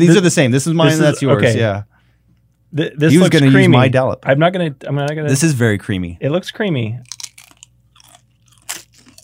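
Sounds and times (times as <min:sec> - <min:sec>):
speech: 0:00.0 - 0:01.9, 0:02.7 - 0:07.1
crunching tortilla chips topped with guacamole: 0:07.0 - 0:09.2.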